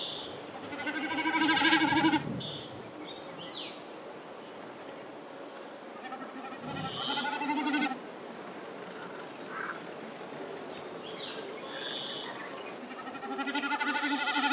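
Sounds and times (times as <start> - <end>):
snipe bleating tremolo: 0.6 - 2.2, 6.0 - 8.0, 12.8 - 14.5.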